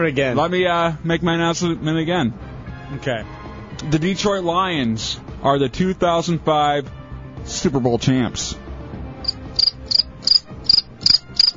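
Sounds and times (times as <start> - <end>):
speech: 0.0 - 8.6
cricket chirping: 9.2 - 11.5.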